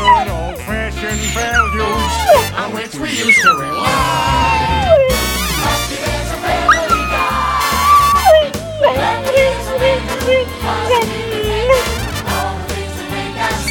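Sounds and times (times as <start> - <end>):
loud upbeat theme song with a steady thumping beat: 0.0 - 2.9, 3.9 - 13.6
dog howling along to a theme song: 0.0 - 5.3, 6.6 - 11.9
speech: 3.0 - 4.3.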